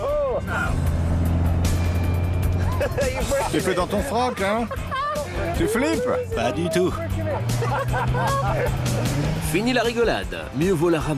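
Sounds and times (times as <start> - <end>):
rear-wheel-drive Cosworth car engine droning on a track: 0.0 - 11.1
laughter: 2.6 - 9.2
speech: 3.0 - 11.1.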